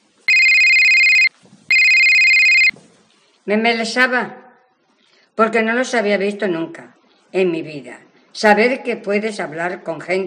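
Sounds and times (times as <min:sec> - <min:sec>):
mobile phone ringing with trilling electronic tone: 0:00.3 - 0:02.7
speech: 0:03.5 - 0:04.4, 0:05.4 - 0:10.2.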